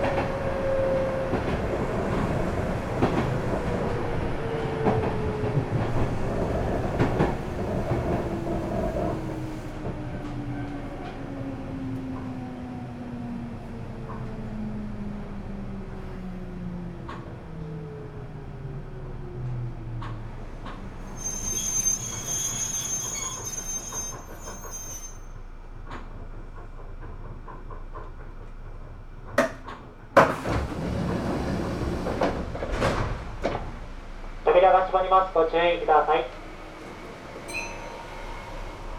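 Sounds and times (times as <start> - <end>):
local all-stations commuter train rumbling along: 0.0 - 38.9
thin high squeal of commuter train slowing: 21.0 - 25.5, 37.5 - 38.9
speech: 34.9 - 36.3.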